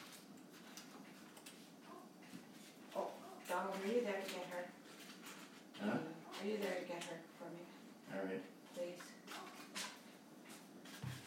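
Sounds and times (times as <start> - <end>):
dog barking short faint yaps: 1.8 - 2.2, 3.0 - 3.6, 9.3 - 9.8
speech: 3.6 - 4.8, 5.8 - 9.2.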